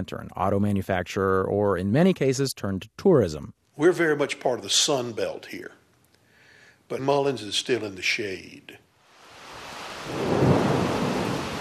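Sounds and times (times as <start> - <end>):
speech: 0.0 - 5.8, 6.9 - 8.9, 10.0 - 10.3
heavy rain in front of an old tobacco warehouse in Mullins, South Carolina: 9.1 - 11.5
low roll of thunder: 9.7 - 11.5.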